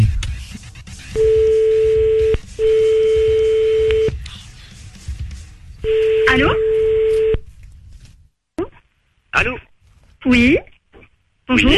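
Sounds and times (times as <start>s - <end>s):
low noise: 1.1s - 11.7s
telephone tones as a call is placed: 1.2s - 4.1s, 5.8s - 7.4s.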